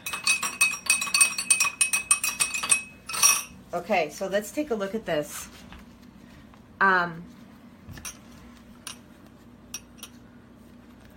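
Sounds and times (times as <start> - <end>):
stirrers clinking against two glasses holding water samples for a pH test: 0.0 - 3.6, 9.7 - 10.2
speech: 3.7 - 5.6, 6.8 - 7.4.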